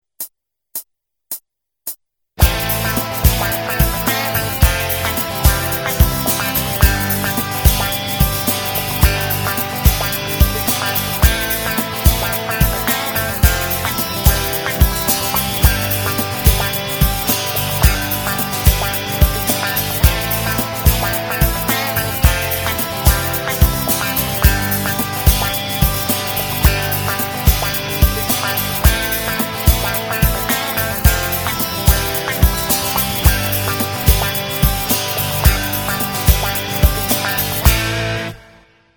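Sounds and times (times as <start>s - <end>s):
cool easy jam track music: 2.4s - 38.4s.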